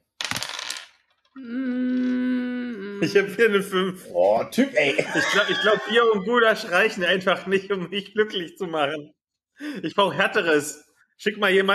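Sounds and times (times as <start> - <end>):
dice rolling during a tabletop role-playing game: 0.1 - 1.4
speech: 1.4 - 1.6, 3.0 - 11.7
laughter: 4.6 - 7.7.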